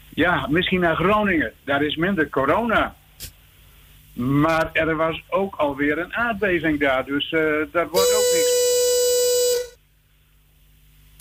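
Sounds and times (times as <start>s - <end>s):
speech: 0.2s - 3.3s, 4.2s - 8.5s
buzzy horn blast signalling a speaker's time is up: 7.9s - 9.8s.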